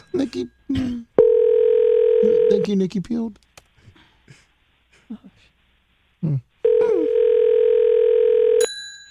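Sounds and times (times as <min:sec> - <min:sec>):
speech: 0:00.1 - 0:01.1, 0:02.2 - 0:03.5
telephone dial tone during incoming call: 0:01.2 - 0:02.7, 0:06.7 - 0:08.6.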